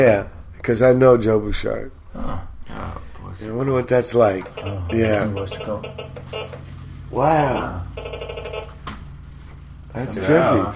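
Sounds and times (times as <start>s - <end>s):
speech: 0.0s - 8.8s, 10.0s - 10.7s
steady low hum: 0.0s - 10.7s
short electronic mobile phone ringtone: 4.4s - 9.3s.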